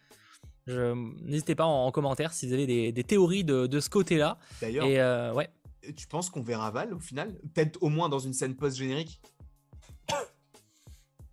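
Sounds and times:
speech: 0.7 - 9.4
dry cough from a person: 9.8 - 10.4.

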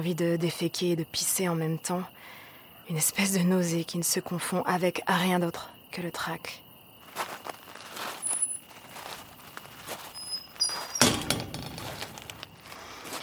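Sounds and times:
speech: 0.0 - 6.6
footsteps: 7.0 - 13.2
rustling: 7.3 - 13.2
door latch clunk as a door is opened: 10.9 - 12.1.

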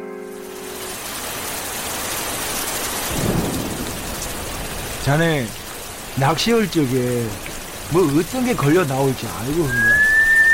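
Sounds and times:
steady dense rain: 0.0 - 10.5
low rumble of thunder: 3.0 - 6.0
speech: 5.0 - 5.6, 6.2 - 10.1.

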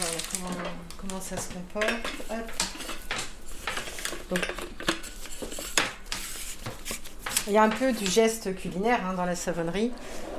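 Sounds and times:
speech: 1.0 - 2.8, 4.3 - 5.0, 7.4 - 10.3
utensils scraping against a bowl: 1.8 - 8.1.

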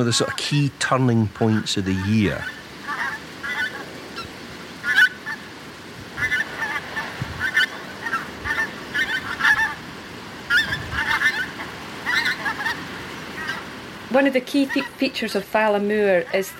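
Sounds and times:
speech: 0.0 - 2.6, 14.2 - 16.5
wind-like noise: 0.0 - 16.5
pink-footed geese flock honking in flight over moorland: 1.4 - 16.5.

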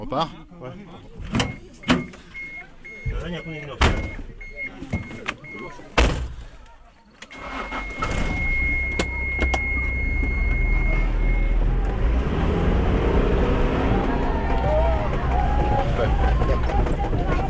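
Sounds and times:
speech: 0.1 - 2.0, 3.2 - 5.0, 5.6 - 6.2
car engine starting and car pulling away: 7.3 - 17.4.

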